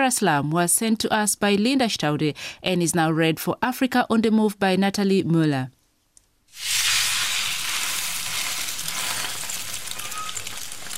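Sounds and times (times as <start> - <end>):
speech: 0.0 - 5.8
dough sizzling on a hot cooking surface: 6.5 - 10.9.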